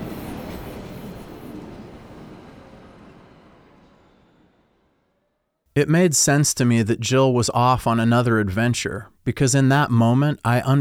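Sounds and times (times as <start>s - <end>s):
train rumbling away from a station: 0.0s - 8.0s
speech: 5.8s - 10.7s.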